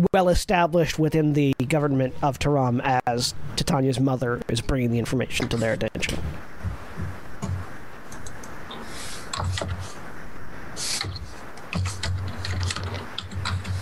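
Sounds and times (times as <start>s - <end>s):
speech: 0.0s - 6.5s
typing on a keyboard: 11.7s - 13.8s.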